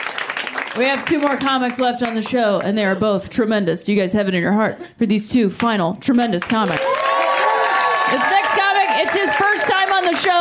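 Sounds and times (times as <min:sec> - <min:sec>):
audience at a comedy show clapping: 0:00.0 - 0:02.8, 0:06.1 - 0:10.3
speech: 0:00.8 - 0:07.1, 0:08.1 - 0:10.3
audience at a comedy show cheering and whooping: 0:06.6 - 0:10.3.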